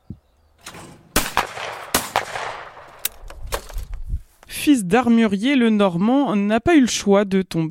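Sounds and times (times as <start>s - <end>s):
gunshots at a sport shooting range: 1.0s - 3.2s
speech: 4.6s - 7.6s.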